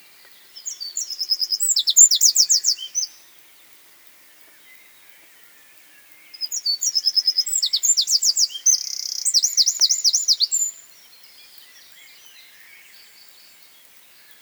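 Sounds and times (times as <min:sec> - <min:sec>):
Eurasian wren (Troglodytes troglodytes) high-pitched trilled song: 0:00.6 - 0:03.2, 0:06.3 - 0:10.8.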